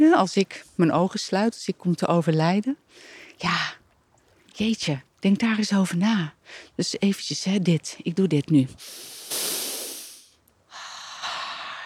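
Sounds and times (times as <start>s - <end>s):
speech: 0.0s - 3.8s, 4.6s - 9.5s
person deeply sniffing outdoor air beside a pond in the countryside: 8.8s - 10.4s.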